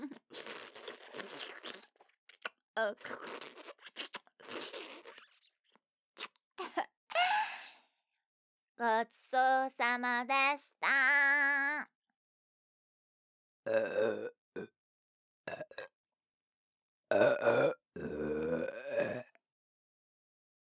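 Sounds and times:
speech: 2.8 - 3.6, 8.8 - 11.9, 13.7 - 14.3
loud gurgling burps: 13.7 - 14.7, 15.5 - 15.9, 17.1 - 19.4.

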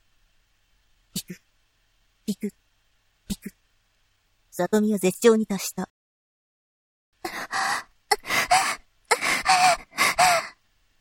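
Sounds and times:
speech: 1.2 - 1.4, 2.3 - 2.6, 4.6 - 5.9
heavy panting breaths: 7.2 - 10.6.

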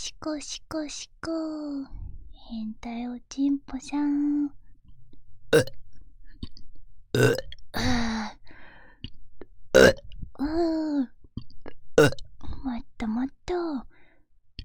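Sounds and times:
speech: 0.1 - 4.6, 5.5 - 5.8, 7.2 - 8.4, 10.4 - 11.1, 13.0 - 13.9
croaky burps: 5.5 - 5.8, 7.2 - 7.5, 9.8 - 10.0, 12.0 - 12.3.

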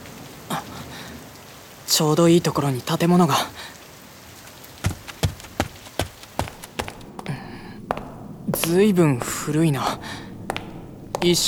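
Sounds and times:
steady rain hissing across a surface: 0.0 - 11.4
speech: 2.0 - 3.7, 8.7 - 10.2, 11.2 - 11.4.

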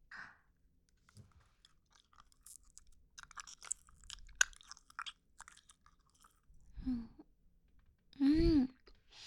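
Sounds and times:
chewing peach-flavored gum: 1.0 - 6.7
soft wet mouth clicks and smacks: 1.6 - 6.4.

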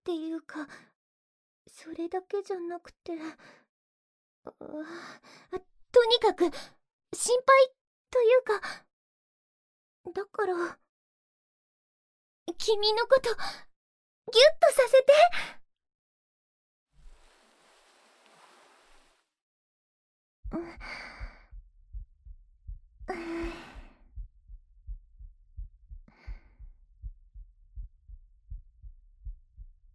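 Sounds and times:
speech: 0.1 - 1.0, 1.7 - 3.6, 4.4 - 8.9, 10.0 - 10.8, 12.5 - 13.7, 14.3 - 15.6, 20.5 - 21.2
heartbeat, slightly quick: 20.4 - 29.9.

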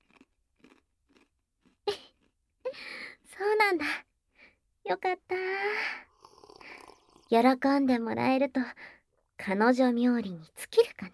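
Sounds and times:
someone chewing crunchy food quickly: 0.0 - 2.4, 6.1 - 7.4
speech: 3.7 - 4.0, 4.9 - 5.4, 7.3 - 11.1.

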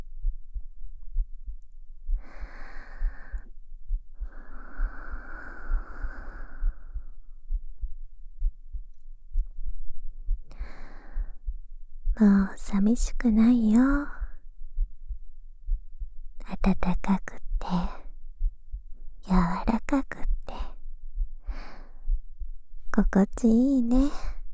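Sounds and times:
person's heartbeat: 0.0 - 24.5
breathy swells of noise: 4.3 - 7.2
speech: 12.2 - 14.2, 16.6 - 18.0, 19.9 - 20.3, 23.0 - 24.3.

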